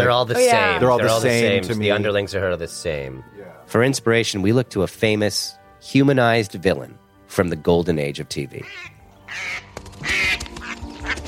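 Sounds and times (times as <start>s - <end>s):
speech: 0.0s - 10.2s
wild ducks quacking: 8.6s - 11.2s.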